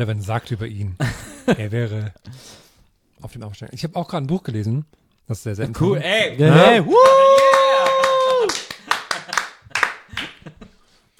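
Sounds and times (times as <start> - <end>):
speech: 0.0 - 2.6, 3.2 - 7.4
person whooping: 6.5 - 8.8
hand claps: 6.9 - 10.7.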